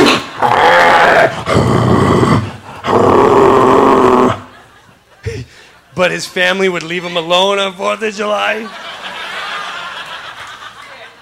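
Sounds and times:
German Shepherd dog growling and snarling: 0.1s - 4.4s
laughter: 4.2s - 6.2s, 8.3s - 11.2s
speech: 6.0s - 8.9s.

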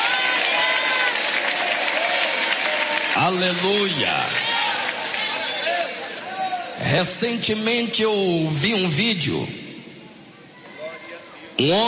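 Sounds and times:
congregation applauding: 0.0s - 6.8s
speech: 3.2s - 4.5s, 6.8s - 9.6s, 11.6s - 11.8s.

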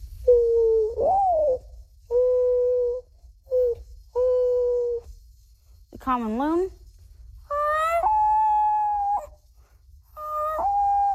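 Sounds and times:
faint low rumble: 0.0s - 11.1s
12-year-old boy imitating a mourning dove call: 0.2s - 5.0s, 7.5s - 9.4s, 10.2s - 11.1s
speech: 6.0s - 6.8s.

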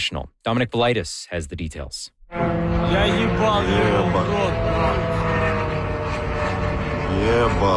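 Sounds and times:
speech: 0.0s - 5.3s, 7.2s - 7.7s
drone engine buzzing overhead: 2.2s - 7.7s.

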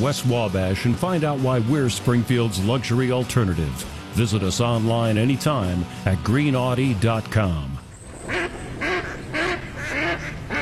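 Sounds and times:
speech: 0.0s - 7.8s
duck quacking: 8.3s - 10.6s.

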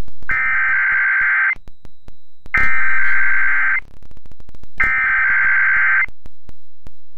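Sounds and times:
emergency alert system attention tones during a system test: 0.3s - 1.6s, 2.5s - 3.8s, 4.8s - 6.1s.

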